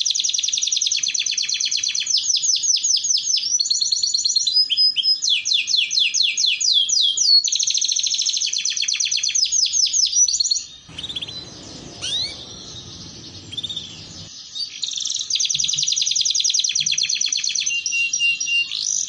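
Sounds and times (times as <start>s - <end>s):
Belgian canary song with fast trills and sweeping rolled phrases: 0.0s - 19.0s
faint chirps: 10.7s - 16.0s
low rumbling noise: 10.9s - 14.3s.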